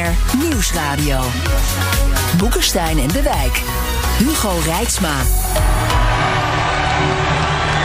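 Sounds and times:
speech: 0:00.1 - 0:06.4
crowd cheering at an election victory celebration at the Louvre: 0:05.5 - 0:07.8.

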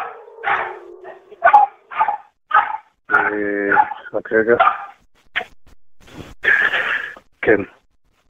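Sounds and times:
anxious female dog barking during a red alert rocket warning in Israel: 0:00.0 - 0:05.5
speech: 0:03.4 - 0:04.8, 0:07.5 - 0:07.8.

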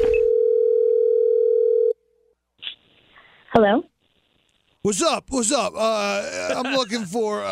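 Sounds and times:
telephone ringing tone of outgoing call: 0:00.2 - 0:02.0
speech: 0:03.6 - 0:03.9, 0:04.8 - 0:07.5
laughter: 0:04.9 - 0:07.5.

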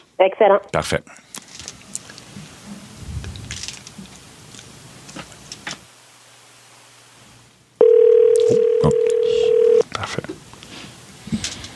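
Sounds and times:
speech: 0:00.2 - 0:01.2
telephone call tone: 0:07.8 - 0:09.8.

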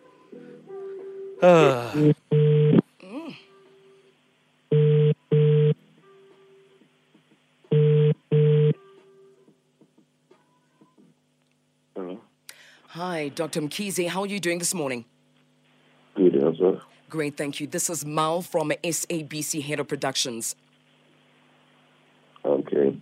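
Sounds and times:
faint hum: 0:00.0 - 0:23.0
speech: 0:01.4 - 0:02.2, 0:13.4 - 0:15.2, 0:17.1 - 0:20.7
warbling telephone connection tone: 0:02.3 - 0:02.8, 0:04.7 - 0:05.8, 0:07.7 - 0:08.8.

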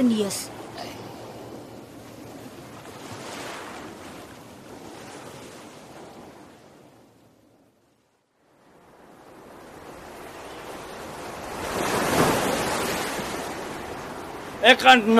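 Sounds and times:
speech: 0:00.0 - 0:00.6, 0:14.6 - 0:15.1
waves lapping on a river: 0:00.0 - 0:15.1.

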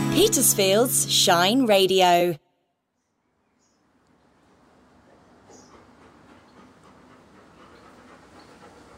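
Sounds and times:
speech: 0:00.2 - 0:02.4
dog panting in the heat: 0:04.9 - 0:08.9.

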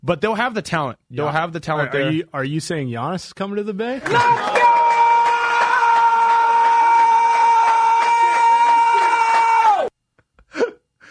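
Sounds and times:
speech: 0:00.0 - 0:04.8
man screaming: 0:04.1 - 0:09.9.

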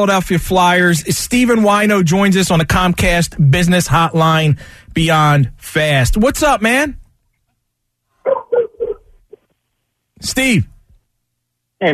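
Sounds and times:
speech: 0:00.0 - 0:07.0, 0:10.2 - 0:10.7
dog barking: 0:08.2 - 0:09.1
dog yipping: 0:08.2 - 0:09.4.

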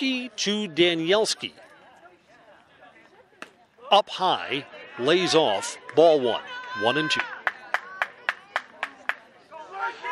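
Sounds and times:
speech: 0:00.0 - 0:01.6, 0:03.9 - 0:07.4
faint murmur of voices: 0:00.0 - 0:10.0
baseball crowd cheering: 0:04.5 - 0:10.0
baseball crowd clapping in unison: 0:06.6 - 0:09.3.

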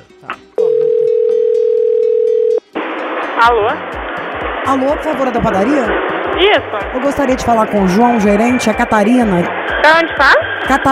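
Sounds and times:
telephone dial tone: 0:00.6 - 0:02.6
speech: 0:03.4 - 0:04.1, 0:04.7 - 0:10.9.

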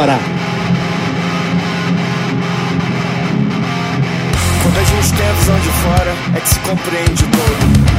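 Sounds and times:
speech: 0:00.0 - 0:00.8, 0:04.6 - 0:07.9
distorted hardcore punk music with fuzzy guitars and driving drums: 0:00.0 - 0:07.9.

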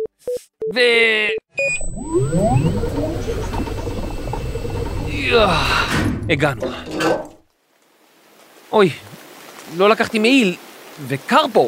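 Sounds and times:
speech: 0:00.7 - 0:01.4, 0:02.0 - 0:04.0, 0:05.2 - 0:07.2, 0:08.7 - 0:09.1, 0:09.7 - 0:11.6
rickety sci-fi time machine traveling sound effect: 0:01.8 - 0:06.3.

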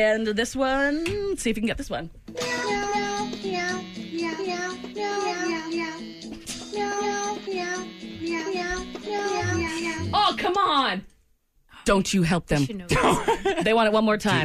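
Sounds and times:
speech: 0:00.0 - 0:02.7, 0:11.9 - 0:14.4
tune made of cat meows: 0:02.4 - 0:06.2, 0:06.8 - 0:10.2.

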